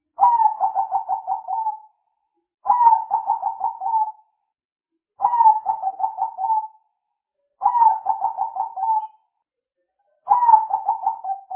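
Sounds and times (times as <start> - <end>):
spotted dove cooing: 0.2 - 1.9, 2.7 - 4.2, 5.2 - 6.8, 7.6 - 9.2, 10.3 - 11.5.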